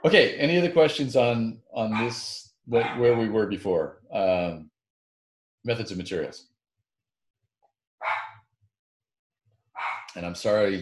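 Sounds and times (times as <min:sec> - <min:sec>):
speech: 0:00.0 - 0:04.7, 0:05.6 - 0:06.5, 0:10.1 - 0:10.7
dog barking: 0:01.9 - 0:03.3, 0:08.0 - 0:08.4, 0:09.8 - 0:10.1.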